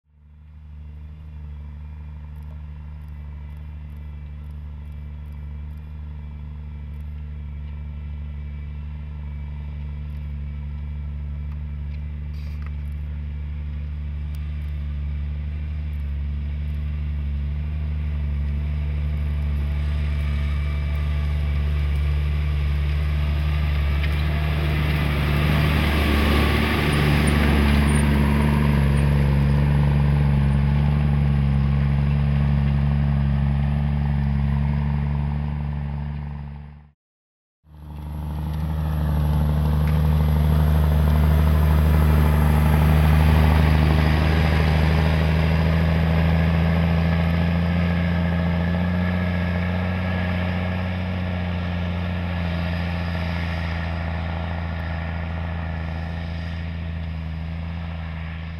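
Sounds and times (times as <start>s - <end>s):
Claas Xerion 3800 tractor with turbocharged Caterpillar six-cylinder engine running: 0.1s - 36.9s, 37.7s - 58.5s.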